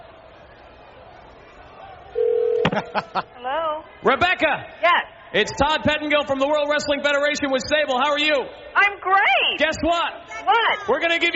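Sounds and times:
faint murmuring background: 0:00.6 - 0:11.3
telephone ringing with loud steady electronic buzz: 0:02.2 - 0:03.1
laughter: 0:02.6 - 0:03.5
speech: 0:02.8 - 0:11.3.

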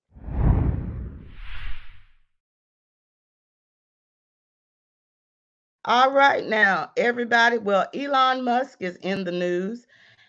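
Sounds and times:
swooshing transition effect: 0:00.2 - 0:02.2
speech: 0:05.8 - 0:10.0.

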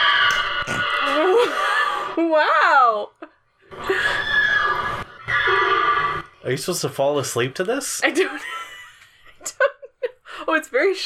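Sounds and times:
horse neighing: 0:00.0 - 0:02.1, 0:03.7 - 0:06.4
laughter: 0:00.6 - 0:04.4, 0:08.1 - 0:10.2
speech: 0:02.2 - 0:03.2, 0:06.4 - 0:08.6, 0:10.5 - 0:11.0.

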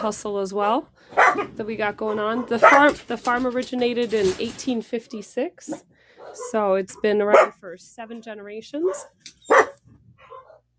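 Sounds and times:
speech: 0:00.0 - 0:09.4
dogs barking: 0:01.0 - 0:03.1, 0:05.7 - 0:07.6, 0:08.8 - 0:10.7
dog softer higher-pitched yips: 0:01.2 - 0:01.5, 0:08.9 - 0:10.6.

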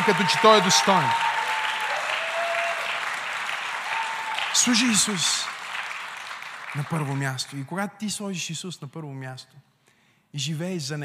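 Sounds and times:
speech: 0:00.0 - 0:01.3, 0:04.6 - 0:05.6, 0:06.8 - 0:09.7, 0:10.3 - 0:11.0
audience applauding: 0:00.0 - 0:07.6.

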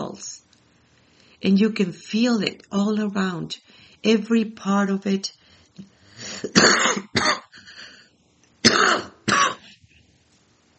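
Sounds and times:
speech: 0:01.4 - 0:07.2
person coughing: 0:06.3 - 0:07.8, 0:08.6 - 0:09.8.

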